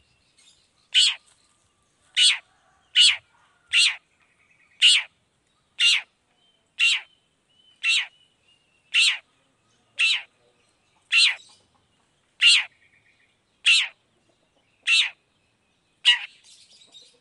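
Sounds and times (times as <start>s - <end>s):
Long-tailed shrike loud grating single notes: 1.0s - 1.2s, 2.2s - 2.4s, 3.0s - 4.0s, 4.8s - 5.1s, 5.8s - 6.1s, 6.8s - 7.1s, 7.8s - 8.1s, 8.9s - 9.3s, 10.0s - 10.3s, 11.1s - 11.5s, 12.4s - 12.7s, 13.6s - 14.0s, 14.9s - 15.2s, 16.1s - 16.3s.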